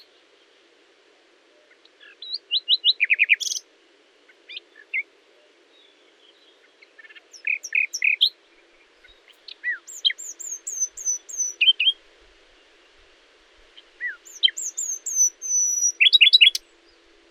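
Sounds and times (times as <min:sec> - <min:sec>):
common nightingale Luscinia megarhynchos song: 0:02.6 - 0:03.6, 0:09.6 - 0:12.0, 0:14.0 - 0:16.6.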